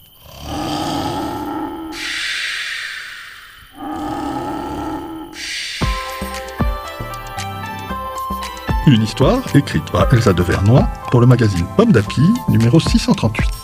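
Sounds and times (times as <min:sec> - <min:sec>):
bear snoring loudly: 0:00.1 - 0:02.4, 0:03.6 - 0:05.5
speech: 0:08.9 - 0:13.6.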